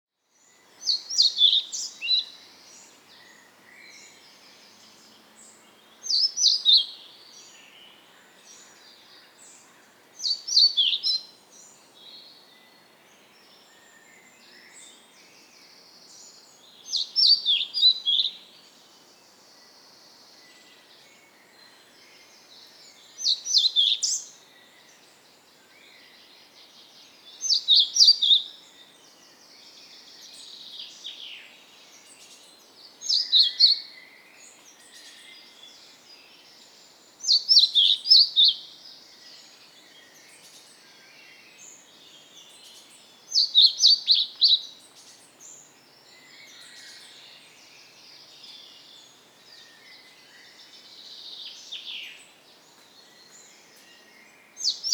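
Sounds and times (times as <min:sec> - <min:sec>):
pied flycatcher calling: 0:00.4 - 0:09.3, 0:10.2 - 0:11.3, 0:16.2 - 0:18.5, 0:22.6 - 0:24.4, 0:27.3 - 0:29.0, 0:29.9 - 0:54.9.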